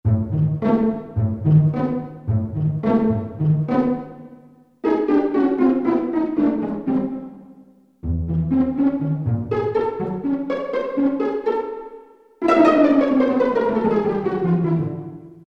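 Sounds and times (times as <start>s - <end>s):
pizzicato strings section: 0.1s - 15.4s.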